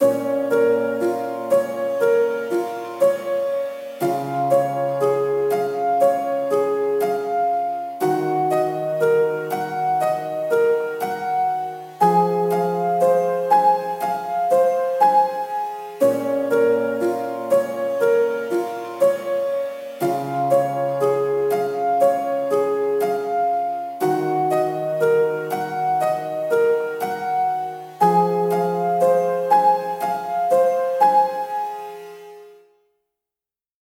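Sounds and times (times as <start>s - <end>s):
piano in B-flat minor at 60 BPM: 0.0s - 33.0s.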